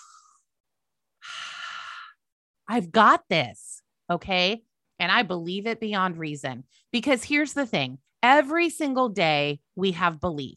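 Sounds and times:
person breathing deeply: 0.0s - 0.5s, 1.2s - 2.2s
speech: 2.7s - 10.5s.

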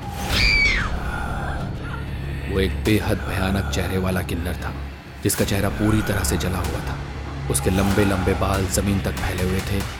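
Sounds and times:
several people screaming loudly at high pitch: 0.3s - 1.0s
dark low rumbling background: 0.7s - 9.9s
speech: 2.5s - 9.9s.

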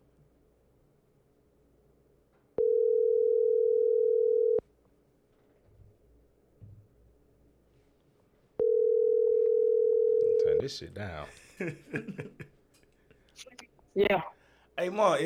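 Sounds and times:
telephone dial tone while placing call: 2.6s - 4.6s, 8.6s - 10.6s
speech: 10.7s - 12.6s, 13.4s - 15.2s
laughter: 11.3s - 12.6s.

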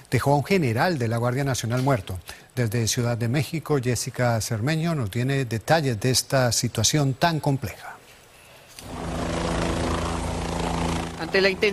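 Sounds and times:
speech: 0.1s - 8.0s, 11.3s - 11.7s
evacuation helicopter flying overhead in Pinos Zacatecas Mexico: 8.8s - 11.7s.

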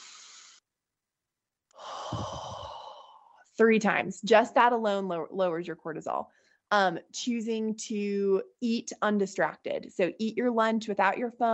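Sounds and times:
deep breaths taken as a calming exercise: 0.0s - 0.6s, 1.8s - 3.5s
speech: 3.6s - 11.5s.

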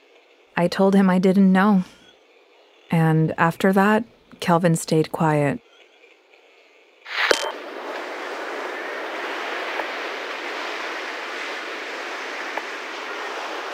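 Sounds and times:
speech: 0.6s - 2.0s, 3.0s - 5.6s
sharp click: 7.1s - 7.6s
surf washing on a beach: 7.1s - 13.7s.

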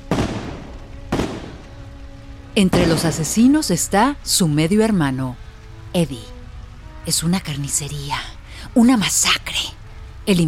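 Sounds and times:
gunshots fired from pickup trucks during a street attack: 0.1s - 1.6s, 2.7s - 3.2s
speech: 2.6s - 5.4s, 6.0s - 6.3s, 7.1s - 10.4s.

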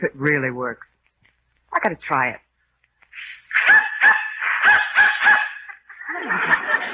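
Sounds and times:
speech: 0.0s - 1.0s, 1.7s - 2.4s
dog barking in response to a dog whistle: 3.6s - 5.7s
laughter: 5.9s - 6.9s.

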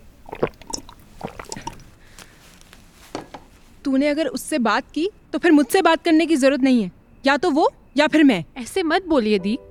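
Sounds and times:
person drinking water with wet gulps and swallowing: 0.0s - 2.2s
speech: 3.9s - 9.6s.

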